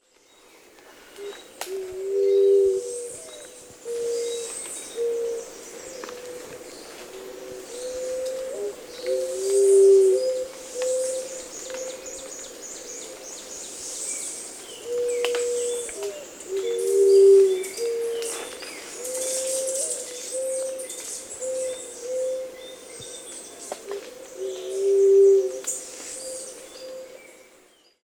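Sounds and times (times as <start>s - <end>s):
Bridled Quail Dove call in Grande Anse St. Lucia: 1.2s - 12.4s, 14.8s - 22.6s, 23.9s - 27.2s.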